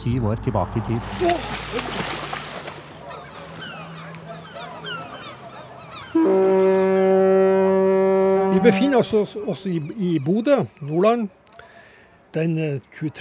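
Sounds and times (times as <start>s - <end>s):
speech: 0.0s - 2.2s, 8.6s - 11.4s, 12.4s - 13.2s
harbour noise: 0.0s - 13.2s
chattering bird calls: 3.0s - 6.2s, 9.1s - 11.7s
coastal express ship horn blast: 3.8s - 9.4s.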